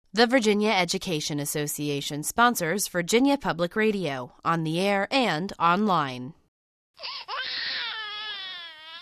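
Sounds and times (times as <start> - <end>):
speech: 0.2 - 6.4
newborn baby crying: 7.0 - 9.0.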